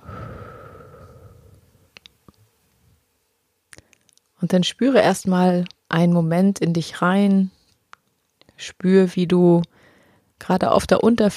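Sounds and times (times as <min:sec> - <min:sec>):
deep breathing in through the nose and out through the mouth in a guided meditation: 0:00.0 - 0:01.8
speech: 0:04.4 - 0:07.6, 0:08.6 - 0:09.8, 0:10.4 - 0:11.3.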